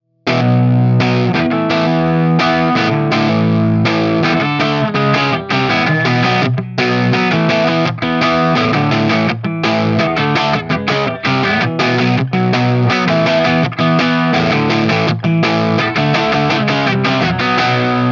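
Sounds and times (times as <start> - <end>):
dirty 18W 6V6 guitar amplifier with Greenback speakers: 0.0 - 18.0.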